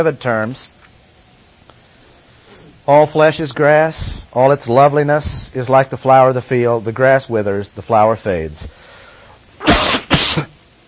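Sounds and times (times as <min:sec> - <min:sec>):
speech: 0:00.0 - 0:00.8, 0:02.9 - 0:08.8
coughing spell: 0:09.6 - 0:10.6.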